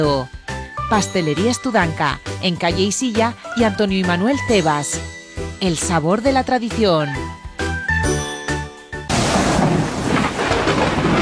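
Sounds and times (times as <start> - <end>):
speech: 0.0 - 7.4
bright chime notes: 0.7 - 9.4
heavy rain with deep rumbling undertone: 9.1 - 11.2.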